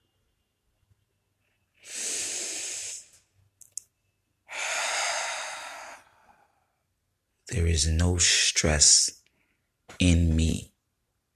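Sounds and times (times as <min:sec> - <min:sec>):
slow deep breathing: 0:01.8 - 0:03.2, 0:04.5 - 0:06.8
speech: 0:07.5 - 0:09.2, 0:10.0 - 0:10.7.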